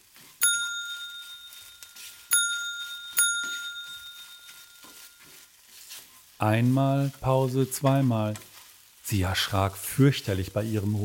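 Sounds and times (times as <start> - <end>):
house service bell ringing shrilly, bright metallic strikes: 0.4 - 5.2
speech: 6.4 - 8.5, 9.1 - 11.0.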